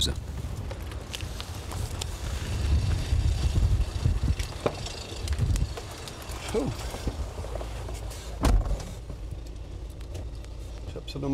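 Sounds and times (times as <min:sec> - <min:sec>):
strong gusty storm wind at an airport roaring against the microphone: 0:00.0 - 0:10.6.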